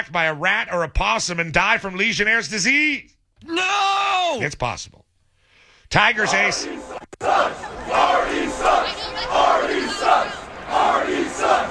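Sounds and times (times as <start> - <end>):
speech: 0.0 - 5.1, 5.9 - 8.2
stadium crowd chanting in unison at a baseball game: 6.2 - 11.6.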